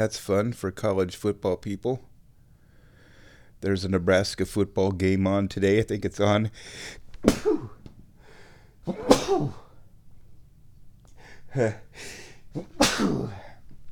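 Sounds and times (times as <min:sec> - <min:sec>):
speech: 0:00.0 - 0:02.1, 0:03.6 - 0:07.7, 0:08.8 - 0:09.6, 0:11.5 - 0:13.4
man sneezing hard: 0:07.2 - 0:07.8, 0:08.8 - 0:09.8, 0:12.5 - 0:13.6.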